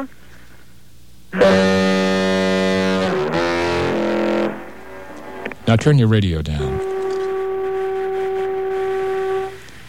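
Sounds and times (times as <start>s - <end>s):
old island lighthouse foghorn blast heard over a phone: 1.3s - 5.5s, 6.6s - 9.8s
speech: 5.7s - 6.8s.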